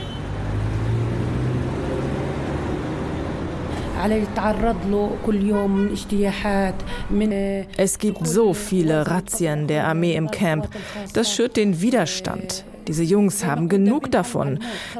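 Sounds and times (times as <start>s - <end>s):
street noise: 0.0s - 14.9s
car engine revving and pulling away: 0.3s - 4.0s
speech: 4.0s - 14.9s.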